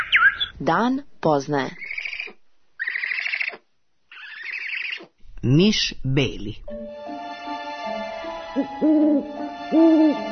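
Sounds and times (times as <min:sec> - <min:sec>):
speech: 0:00.6 - 0:01.8, 0:05.4 - 0:06.9, 0:08.6 - 0:10.3
owl hooting: 0:01.8 - 0:05.1, 0:08.6 - 0:10.3.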